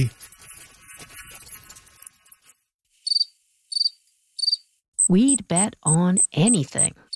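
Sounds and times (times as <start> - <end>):
speech: 0.0 - 0.3, 5.1 - 7.0
crickets chirping: 3.0 - 4.7.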